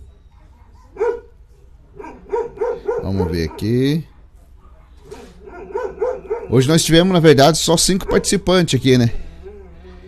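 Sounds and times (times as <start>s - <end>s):
low hum: 0.0s - 10.0s
small dog barking: 0.9s - 1.4s, 2.0s - 3.9s, 5.2s - 6.7s, 8.0s - 8.4s
speech: 3.1s - 4.1s, 6.5s - 9.2s.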